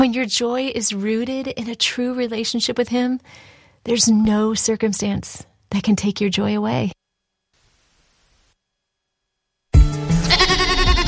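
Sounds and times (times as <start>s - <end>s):
speech: 0.0s - 7.0s
goat bleating: 10.2s - 11.0s.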